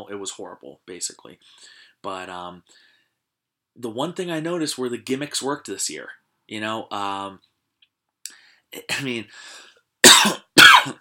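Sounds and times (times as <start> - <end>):
speech: 0.0 - 2.9, 3.8 - 7.5, 8.7 - 10.9
harsh coughs: 10.0 - 10.9.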